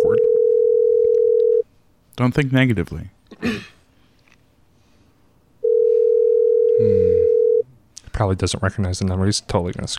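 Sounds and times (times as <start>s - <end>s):
outgoing phone call telephone ringback tone: 0.0s - 1.6s, 5.6s - 7.6s
speech: 2.2s - 3.7s, 8.2s - 9.9s.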